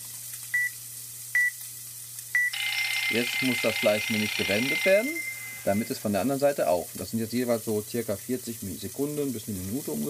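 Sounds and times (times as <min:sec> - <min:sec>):
short bright electronic beeps from an app countdown timer: 0:00.5 - 0:00.8, 0:01.4 - 0:01.6, 0:02.4 - 0:06.1
low steady hum: 0:02.3 - 0:06.9
sustained higher tone from an app countdown timer: 0:02.6 - 0:06.1
speech: 0:03.1 - 0:10.0.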